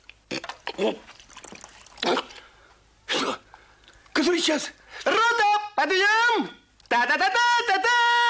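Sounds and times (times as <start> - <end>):
water splashed from hands onto face: 0.4 - 2.5
speech: 0.8 - 1.1, 4.4 - 5.2, 5.8 - 8.2.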